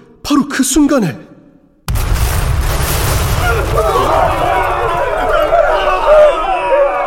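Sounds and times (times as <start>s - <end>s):
speech: 0.3s - 1.3s
cannon fire breaking a fortress gate: 1.9s - 5.7s
sustained rumbling blasts: 1.9s - 6.1s
many voices of attacking troops shouting: 3.3s - 7.0s.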